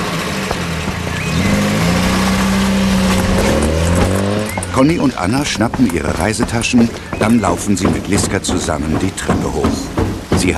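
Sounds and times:
car engine turning over and revving: 0:00.0 - 0:10.5
speech: 0:04.8 - 0:10.5.

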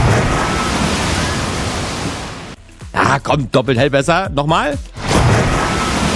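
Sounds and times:
rushing water: 0:00.0 - 0:02.6, 0:04.9 - 0:06.1
speech: 0:03.1 - 0:04.9.

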